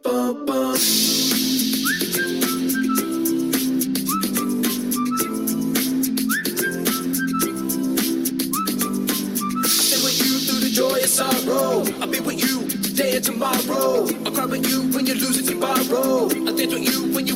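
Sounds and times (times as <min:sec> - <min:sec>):
speech: 0:00.8 - 0:01.2
short rising whistle blowing: 0:00.8 - 0:07.8, 0:08.4 - 0:11.2
loud busy music track with steady percussion: 0:00.8 - 0:17.3.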